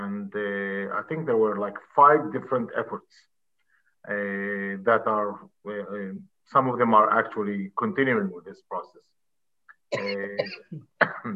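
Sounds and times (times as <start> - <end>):
speech: 0.3 - 3.3, 4.0 - 9.2, 9.9 - 11.3
person coughing: 9.9 - 11.3.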